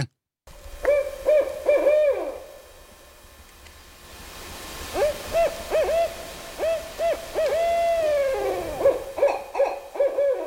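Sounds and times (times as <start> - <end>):
faint nighttime hiss: 0.5 - 10.4
barred owl hooting: 0.8 - 2.6, 4.9 - 10.4.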